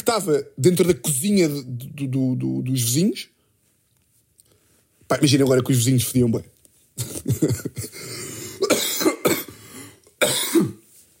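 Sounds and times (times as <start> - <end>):
speech: 0.1 - 3.3, 5.1 - 8.3, 10.2 - 10.8
harsh raspy coughing fit: 7.0 - 10.8.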